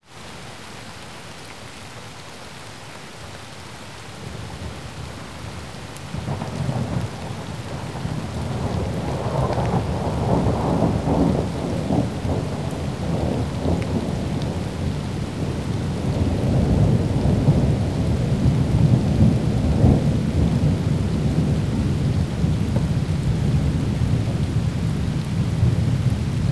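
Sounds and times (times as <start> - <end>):
rain: 0.0 - 26.4
thunder: 6.1 - 26.4.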